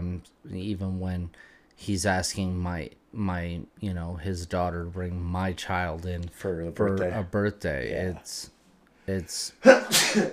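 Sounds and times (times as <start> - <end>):
speech: 0.2 - 10.3
sneeze: 9.6 - 10.3.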